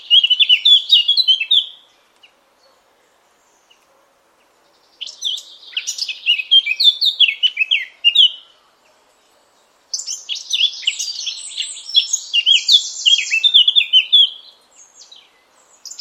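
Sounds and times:
Eurasian blackcap warbling song: 0.0s - 2.3s, 5.0s - 8.6s, 9.9s - 15.9s.

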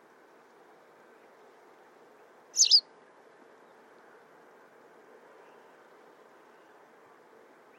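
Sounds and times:
soft steady hum: 0.0s - 7.7s
white wagtail double-noted high call: 2.6s - 2.8s.

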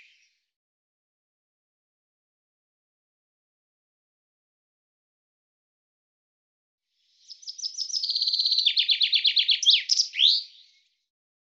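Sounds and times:
common chaffinch singing: 7.3s - 10.7s.

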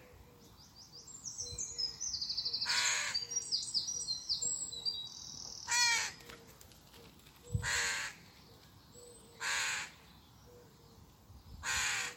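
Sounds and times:
bird calling with rough grating caws: 2.7s - 3.3s, 5.7s - 6.2s, 7.6s - 8.2s, 9.4s - 10.0s, 11.6s - 12.1s.

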